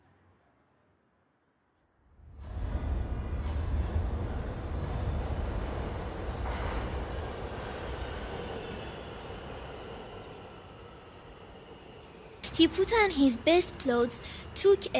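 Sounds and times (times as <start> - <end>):
train bound for the mountains rumbling along the rails: 2.3 - 14.9
faint train wheel squeals: 8.0 - 12.4
speech: 12.6 - 14.9.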